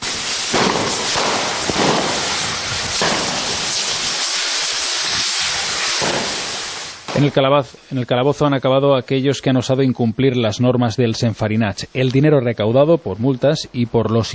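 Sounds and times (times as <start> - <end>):
firecrackers cracking and popping during a festival flour battle in a church square: 0.0 - 7.8
dense steady hissing roar: 0.0 - 8.1
speech: 7.2 - 14.3.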